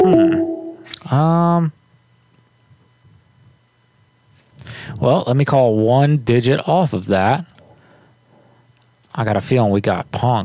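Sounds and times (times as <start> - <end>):
electronic voicemail beep tone on a phone line: 0.0 - 0.9
quiet phone line hiss: 0.0 - 1.2
speech: 1.1 - 1.8, 5.0 - 7.5, 9.2 - 10.4.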